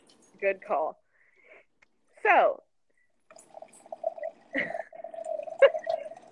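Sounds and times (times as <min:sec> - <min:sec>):
speech: 0:00.4 - 0:01.0, 0:02.2 - 0:02.6
wine pouring from a boxed-wine spout into a glass: 0:03.3 - 0:06.3.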